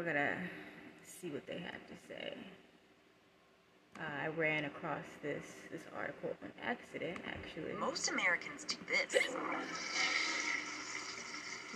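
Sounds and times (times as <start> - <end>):
speech: 0.0 - 2.7, 4.0 - 10.4
toilet flushing: 9.3 - 11.7.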